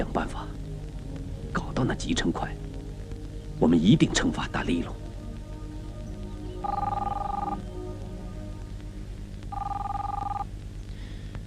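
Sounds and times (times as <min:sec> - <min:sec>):
low hum: 0:00.0 - 0:11.4
speech: 0:01.8 - 0:02.6, 0:03.6 - 0:05.0
telephone ringing: 0:06.6 - 0:07.6, 0:09.5 - 0:10.5.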